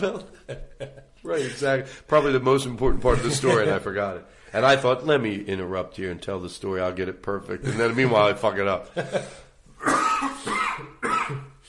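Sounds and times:
speech: 0:00.0 - 0:10.0
harsh raspy coughs: 0:09.8 - 0:11.6.

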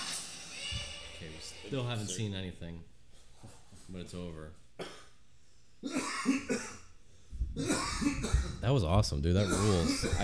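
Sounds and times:
speech: 0:01.2 - 0:05.0, 0:05.8 - 0:06.7, 0:08.7 - 0:10.2
person coughing in a harsh fit: 0:04.8 - 0:05.2, 0:05.8 - 0:06.9, 0:07.6 - 0:08.6, 0:09.4 - 0:10.2.

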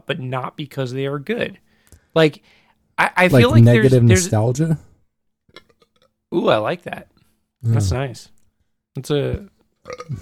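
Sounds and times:
speech: 0:00.1 - 0:04.9, 0:06.3 - 0:08.3, 0:09.0 - 0:10.2
low voiced sound: 0:03.3 - 0:04.4
loud burp: 0:09.8 - 0:10.2.

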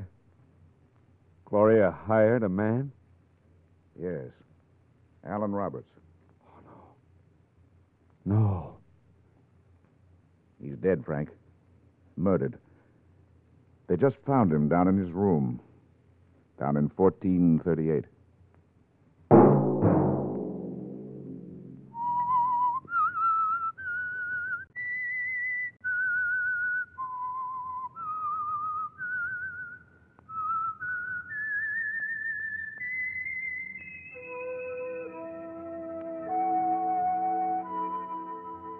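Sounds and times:
speech: 0:01.5 - 0:03.0, 0:04.0 - 0:04.4, 0:05.2 - 0:06.0, 0:08.2 - 0:08.8, 0:10.6 - 0:11.4, 0:12.2 - 0:12.6, 0:13.9 - 0:15.6, 0:16.6 - 0:18.2
sharp orchestral stab: 0:19.3 - 0:22.2
person whistling a slow eerie melody: 0:21.9 - 0:38.7
soft accompanying tones: 0:32.1 - 0:38.7.

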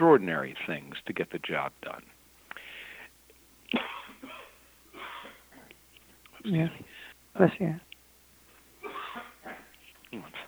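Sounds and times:
speech: 0:00.0 - 0:02.2, 0:06.4 - 0:07.9
person sneezing quietly: 0:03.7 - 0:05.7, 0:08.8 - 0:10.4.

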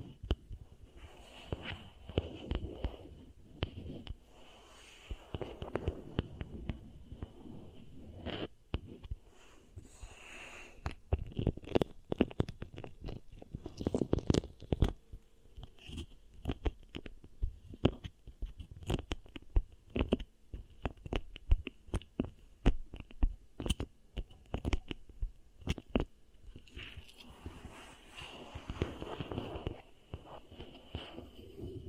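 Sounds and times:
beeswax crackling while pressed and worked: 0:00.0 - 0:31.8
soft squishing of beeswax: 0:00.0 - 0:31.8.

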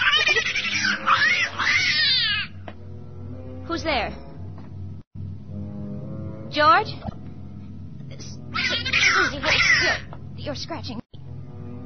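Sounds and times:
cat yowling: 0:00.0 - 0:02.6, 0:08.6 - 0:10.0
speech: 0:03.8 - 0:04.3, 0:06.6 - 0:07.1, 0:09.2 - 0:11.0.

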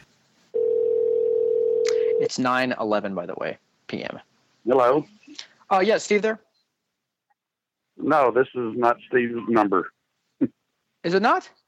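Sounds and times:
steady telephone dial tone: 0:00.6 - 0:02.3
speech: 0:02.2 - 0:06.5, 0:08.0 - 0:11.6.

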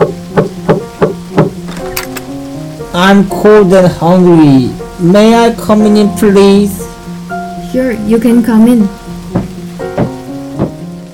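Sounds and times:
steady rain: 0:00.0 - 0:11.1
speech: 0:03.0 - 0:06.9, 0:07.7 - 0:09.0.

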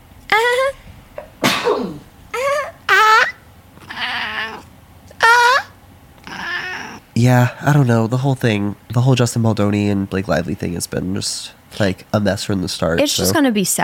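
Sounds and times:
sneeze: 0:01.4 - 0:02.1
cat meowing: 0:02.8 - 0:07.0
speech: 0:07.2 - 0:13.8.

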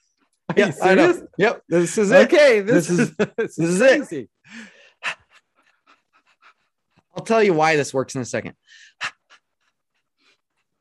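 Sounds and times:
speech: 0:00.6 - 0:05.2, 0:07.2 - 0:09.2
person panting like a dog during a tapping exercise: 0:04.5 - 0:07.1, 0:08.7 - 0:10.7.

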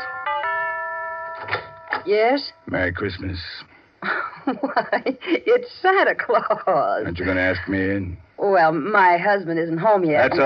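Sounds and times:
electronic doorbell chime melody playing a Christmas tune: 0:00.0 - 0:02.2
speech: 0:02.0 - 0:10.4
laughter: 0:04.0 - 0:08.2, 0:10.2 - 0:10.4.

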